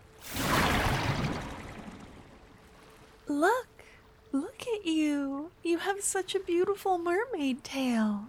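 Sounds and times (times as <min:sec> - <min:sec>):
water splashing in the ocean: 0:00.0 - 0:03.0
speech: 0:04.8 - 0:08.2.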